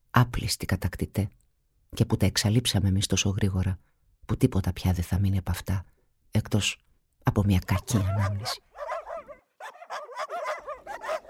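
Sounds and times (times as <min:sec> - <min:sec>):
speech: 0:00.2 - 0:08.7
dogs barking and yipping excitedly: 0:07.8 - 0:11.2.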